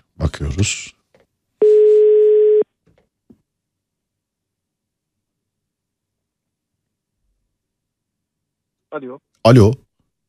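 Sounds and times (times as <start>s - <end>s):
speech: 0.2s - 1.0s, 9.0s - 9.8s
telephone ringback tone while placing a call: 1.6s - 2.6s.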